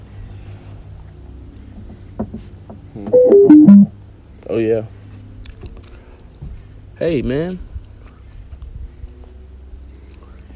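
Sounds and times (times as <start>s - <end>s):
speech: 2.3s - 3.8s, 4.5s - 5.0s, 7.0s - 7.7s
soft chewing of gum with wet clicks and smacks: 9.7s - 10.5s.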